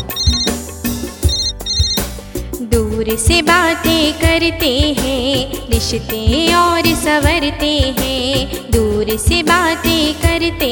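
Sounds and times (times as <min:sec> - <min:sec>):
electronic telephone ringtone melody over a low thumping beat: 0:00.0 - 0:00.7, 0:01.3 - 0:02.1
speech: 0:02.6 - 0:10.7.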